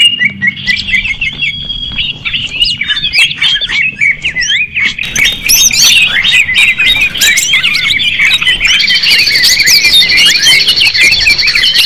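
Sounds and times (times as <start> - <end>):
leafbird singing fast chattering medley: 0.0 - 11.8.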